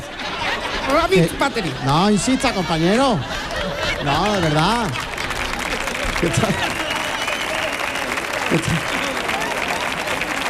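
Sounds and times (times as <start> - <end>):
laughter: 0.0 - 10.4
speech: 0.9 - 3.4, 4.0 - 5.1, 6.2 - 6.8, 8.5 - 9.0
crowd applauding: 3.4 - 10.4.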